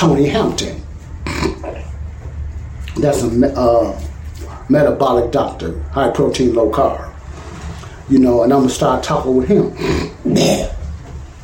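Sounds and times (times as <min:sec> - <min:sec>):
speech: 0:00.0 - 0:00.8, 0:03.0 - 0:04.1, 0:04.7 - 0:07.1, 0:08.1 - 0:10.8
man clearing throat: 0:09.8 - 0:10.8.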